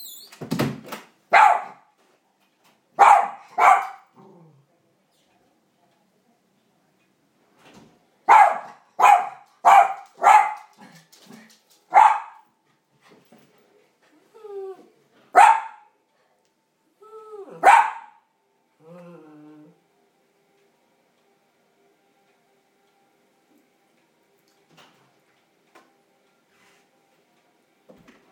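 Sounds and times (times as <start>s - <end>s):
dog barking: 1.3s - 1.9s, 3.0s - 4.1s, 8.3s - 10.8s, 11.9s - 12.5s, 15.4s - 15.9s, 17.6s - 18.2s.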